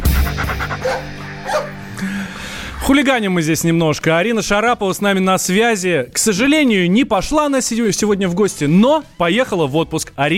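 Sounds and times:
dog panting in a studio: 0.2s - 1.8s
dog barking in a studio: 0.7s - 1.8s
speech: 2.9s - 10.3s.

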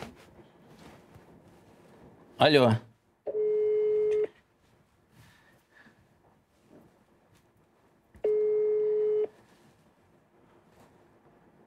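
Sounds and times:
speech: 2.4s - 2.9s
telephone ringback tone of an unanswered call: 3.3s - 4.3s, 8.2s - 9.3s.

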